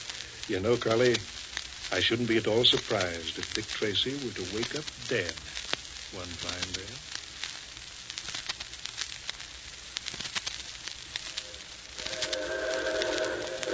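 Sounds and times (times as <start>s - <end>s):
steam locomotive hiss with tonal whine: 0.0s - 13.7s
speech: 0.5s - 7.1s
4-6-4 Hudson-type steam locomotive arriving: 11.4s - 13.7s.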